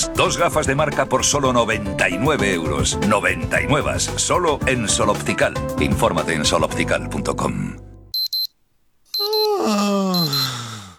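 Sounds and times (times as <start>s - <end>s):
speech: 0.0s - 7.8s
alarm clock beeping in high-pitched pairs: 8.2s - 8.5s, 9.2s - 9.5s, 10.2s - 10.5s
person groaning in a drawn-out sliding voice: 9.2s - 10.9s.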